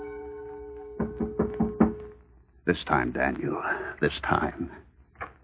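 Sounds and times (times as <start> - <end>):
sharp knocks on a door: 1.0 - 2.1
speech: 2.7 - 4.9.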